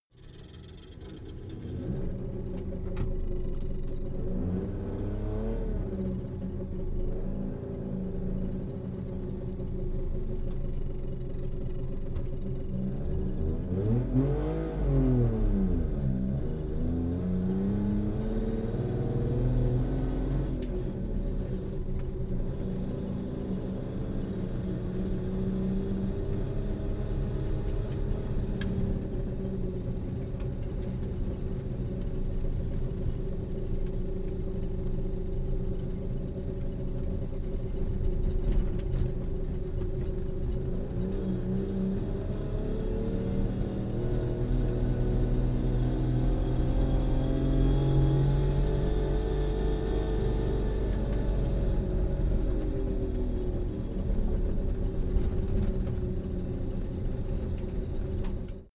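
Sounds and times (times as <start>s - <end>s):
Saab 92 car driving slowly heard from interior: 0.2s - 58.7s.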